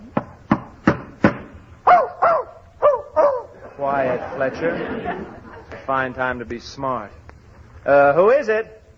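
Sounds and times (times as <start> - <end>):
dog barking inside a hotel: 1.9 - 3.5
laughter: 3.5 - 6.1
speech: 3.8 - 7.2, 7.8 - 8.8.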